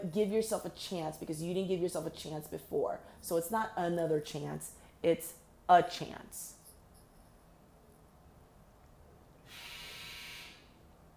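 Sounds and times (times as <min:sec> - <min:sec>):
speech: 0:00.0 - 0:06.6
quiet room hiss: 0:00.0 - 0:11.1
clothes dryer end-of-cycle electronic buzzer: 0:09.4 - 0:10.8.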